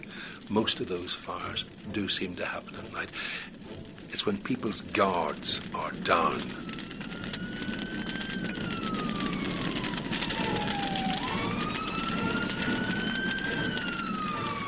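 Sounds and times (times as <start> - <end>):
street traffic rumble: 0.0 - 14.6
speech: 0.5 - 6.7
fire engine siren wailing: 3.3 - 14.6.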